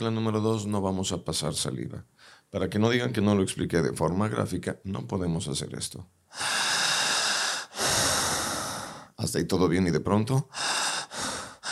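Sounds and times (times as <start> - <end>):
speech: 0.0 - 6.6, 9.2 - 10.7
long airy breaths demonstrating continuous breathing: 6.3 - 9.2, 10.5 - 11.6.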